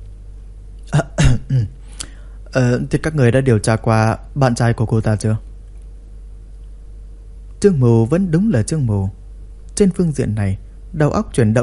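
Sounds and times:
voice imitating a short dry cough or throat clearing: 0.9 - 1.8
speech: 1.5 - 1.8, 2.5 - 5.5, 7.6 - 9.2, 9.8 - 11.6.

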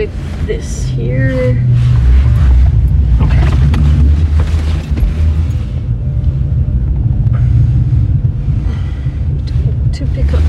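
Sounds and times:
speech: 0.0 - 2.0
gusty wind buffeting the microphone: 0.0 - 10.4
heavy trucks rumbling by on a busy road: 0.0 - 10.4.

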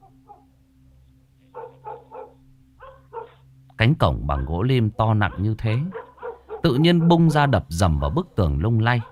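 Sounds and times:
house dog barking at a heavy ironwood gate: 0.0 - 0.5, 1.5 - 3.4, 4.3 - 8.3, 9.0 - 9.1
steady low hum: 0.0 - 9.1
speech: 3.8 - 6.0, 6.6 - 9.1.

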